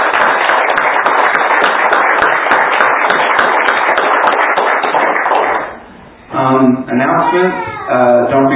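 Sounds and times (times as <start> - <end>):
church audience applauding: 0.0 - 5.8
speech: 7.0 - 8.5.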